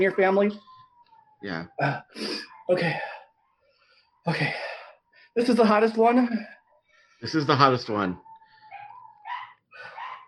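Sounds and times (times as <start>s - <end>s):
speech: 0.0s - 0.7s, 1.4s - 3.1s, 4.2s - 4.7s, 5.4s - 6.6s, 7.2s - 8.2s
dog whining in high-pitched cries: 0.0s - 3.2s, 8.1s - 10.2s.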